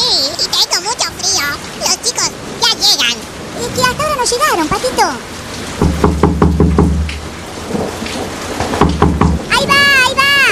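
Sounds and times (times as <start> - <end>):
heavy rain: 0.0 - 10.5
thunder rumbling: 2.2 - 10.5
speech: 4.3 - 5.3.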